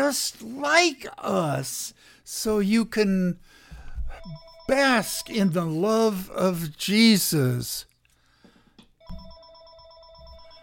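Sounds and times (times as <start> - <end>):
speech: 0.1 - 3.6, 4.2 - 7.9
telephone ringing: 4.2 - 5.3, 9.0 - 10.6.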